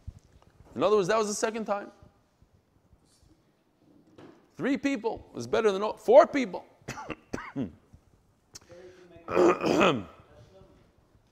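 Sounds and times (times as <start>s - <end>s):
speech: 0.8s - 2.0s, 4.6s - 7.8s, 9.3s - 10.2s
person coughing: 6.9s - 7.8s, 9.3s - 10.2s.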